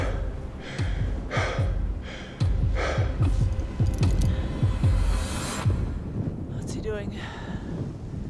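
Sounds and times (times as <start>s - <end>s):
person breathing heavily, out of breath at high altitude on a mountain climb: 0.0s - 5.3s
gusty wind rumble: 0.0s - 8.2s.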